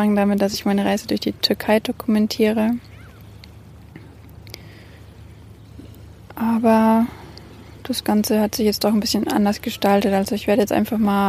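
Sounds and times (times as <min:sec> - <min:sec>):
speech: 0:00.0 - 0:02.9, 0:06.6 - 0:07.2, 0:07.9 - 0:11.2
sea water washing at a seaside spot: 0:00.0 - 0:11.2
small splashes: 0:02.8 - 0:06.4.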